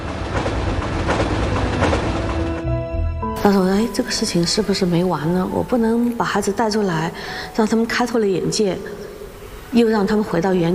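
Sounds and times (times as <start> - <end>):
train wheels clacking over track joints: 0.0 - 2.7
train running on rails: 0.0 - 6.0
speech: 3.4 - 9.0, 9.7 - 10.7.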